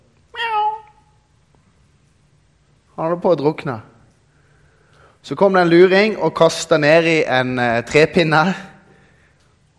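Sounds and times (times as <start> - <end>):
faint low hum: 0.0 - 9.7
cat meowing: 0.4 - 1.1
speech: 3.0 - 3.9, 5.2 - 8.7.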